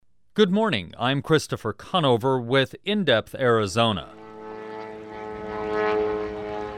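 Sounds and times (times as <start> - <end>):
speech: 0.4 - 4.2
aerobatic propeller aircraft engine droning over the desert of Avra Valley: 4.0 - 6.7.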